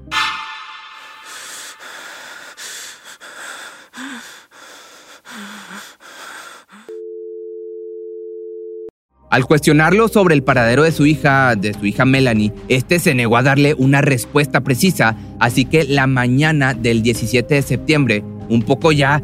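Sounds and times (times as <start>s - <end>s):
heavy breathy noise rushes: 1.0s - 6.9s
steady telephone call tone: 6.9s - 8.9s
speech: 9.3s - 19.2s.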